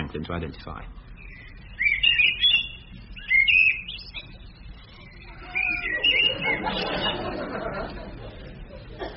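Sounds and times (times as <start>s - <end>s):
soft outdoor hiss: 0.0s - 9.1s
speech: 0.1s - 1.1s
blackbird singing: 0.6s - 7.4s
laughter: 5.4s - 9.1s.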